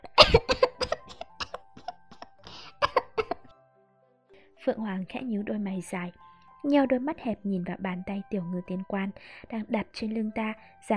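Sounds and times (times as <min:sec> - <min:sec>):
dry coughing fit with harsh hacking coughs: 0:00.1 - 0:03.5
speech: 0:04.7 - 0:10.9.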